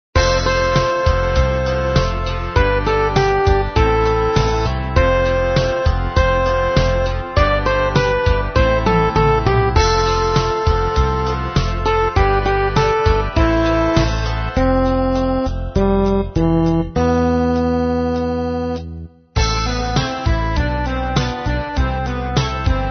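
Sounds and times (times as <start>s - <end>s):
midi music: 0.2s - 22.8s.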